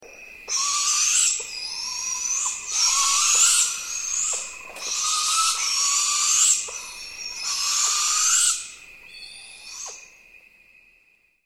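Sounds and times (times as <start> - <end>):
Barred Owl begging calls: 0.5 - 10.0.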